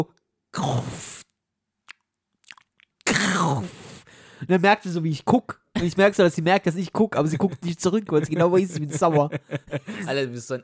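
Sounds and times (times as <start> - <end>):
speech: 0.0 - 1.1, 4.5 - 10.6
voice imitating quiet slow chewing with soft wet mouth clicks: 1.8 - 3.1
laughter: 7.3 - 10.6.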